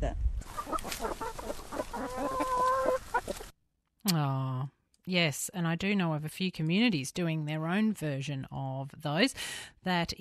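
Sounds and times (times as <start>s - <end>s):
chickens clucking on a farm: 0.4s - 3.5s
hen drawn-out call: 0.5s - 3.5s
speech: 5.1s - 10.1s.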